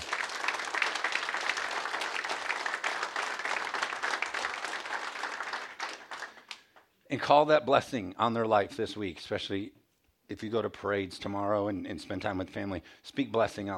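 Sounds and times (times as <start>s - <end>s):
crowd applauding: 0.0s - 6.8s
speech: 7.1s - 13.7s.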